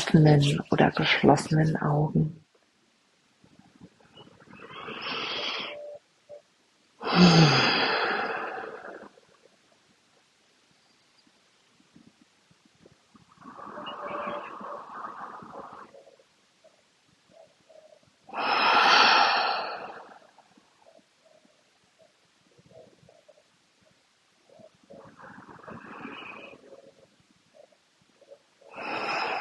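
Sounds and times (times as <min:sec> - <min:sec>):
speech: 0:00.1 - 0:02.4, 0:07.2 - 0:07.7
deep breaths in and out before a guided meditation: 0:04.4 - 0:05.9, 0:07.0 - 0:09.2, 0:18.3 - 0:20.4, 0:24.9 - 0:29.4.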